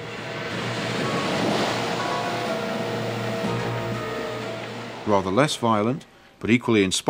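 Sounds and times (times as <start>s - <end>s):
heavy ocean surf crashing against the coast: 0.0s - 6.0s
speech: 5.1s - 7.0s.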